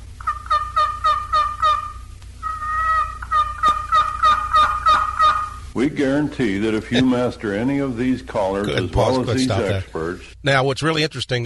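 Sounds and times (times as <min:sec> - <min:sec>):
faint low hum: 0:00.0 - 0:11.4
box call imitating old hen turkey yelps: 0:00.2 - 0:05.7
speech: 0:05.8 - 0:11.4.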